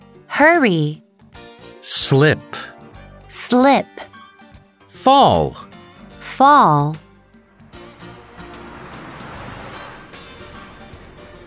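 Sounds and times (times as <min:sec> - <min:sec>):
speech: 0:00.4 - 0:01.0, 0:01.8 - 0:02.7, 0:03.5 - 0:04.1, 0:05.0 - 0:05.7, 0:06.4 - 0:07.0
steady road noise: 0:07.2 - 0:11.4
bus engine rumble as the bus pulls up: 0:07.7 - 0:11.4.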